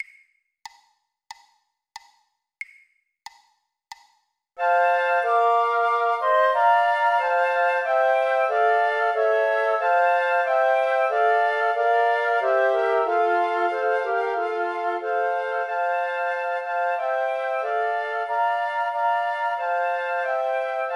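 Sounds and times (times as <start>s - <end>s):
flute: 4.6s - 20.9s.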